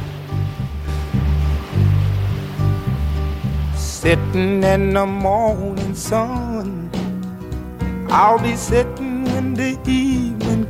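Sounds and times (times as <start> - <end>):
ocean surf rolling onto the shore: 0.0 - 4.7
low steady musical tones humming: 0.0 - 10.6
speech: 4.0 - 6.8, 8.1 - 10.6.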